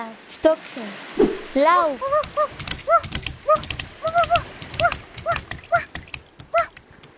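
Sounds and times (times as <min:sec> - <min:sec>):
speech: 0:00.3 - 0:04.2
dog giving short high-pitched yips: 0:02.4 - 0:05.9.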